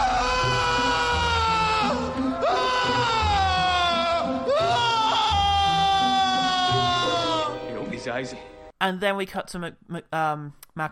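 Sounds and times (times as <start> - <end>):
man screaming in the street: 0.0 - 7.6
speech: 8.2 - 10.9.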